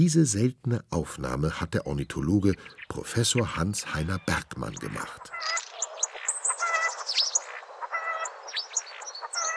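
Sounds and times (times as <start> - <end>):
speech: 0.0 - 5.6
starling singing and mimicking other birds' calls: 2.0 - 9.5.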